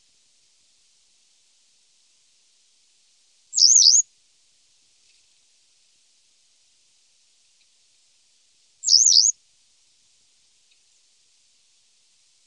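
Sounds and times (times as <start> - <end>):
western yellow wagtail giving high thin wavering calls: 3.6 - 4.0, 8.8 - 9.3.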